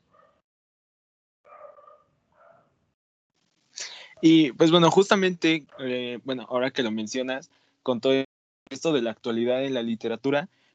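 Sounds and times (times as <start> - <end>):
dog barking and yelping: 1.5 - 2.7
speech: 4.2 - 10.6.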